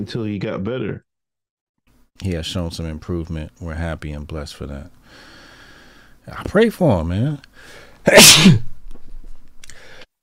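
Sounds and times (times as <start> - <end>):
speech: 0.0 - 1.1, 2.2 - 5.3, 6.3 - 8.7
person sneezing: 8.0 - 8.7.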